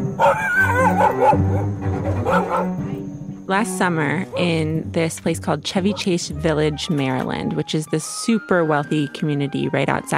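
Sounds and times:
large golden doodle barking and yelping at a dog park: 0.2 - 2.8
speech: 0.3 - 1.8, 3.5 - 10.1.

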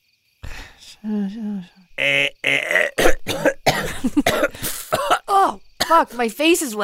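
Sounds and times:
speech: 1.0 - 3.4, 5.9 - 6.8
rough throaty dry coughs: 2.0 - 6.1.

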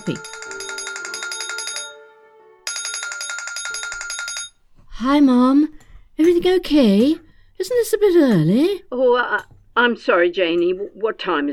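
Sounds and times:
speech: 0.0 - 0.4, 5.0 - 11.5
telephone ringing with electronic trill: 0.0 - 4.6.

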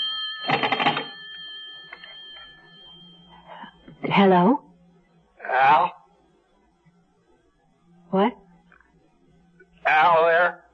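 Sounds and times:
telephone ringing: 0.0 - 4.0
speech: 4.1 - 4.7, 5.5 - 6.0, 8.1 - 8.4.

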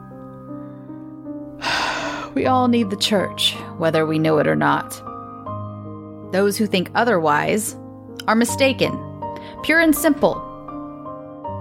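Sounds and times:
stifled yawn: 1.6 - 2.4
speech: 2.3 - 5.1, 6.3 - 10.4.

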